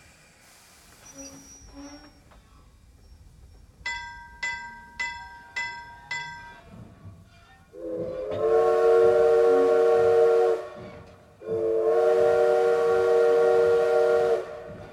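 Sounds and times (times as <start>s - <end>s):
steam locomotive whistle blasts at railway station: 7.8s - 14.9s.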